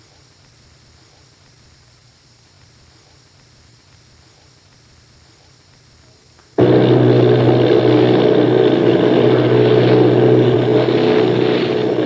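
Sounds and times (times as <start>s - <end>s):
engines of eight bomber planes droning: 6.6s - 12.0s.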